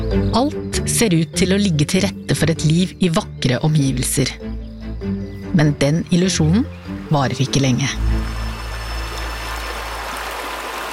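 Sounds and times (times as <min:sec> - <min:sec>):
speech: 0:00.1 - 0:08.2
river winding slowly through flat land flowing: 0:06.6 - 0:10.9.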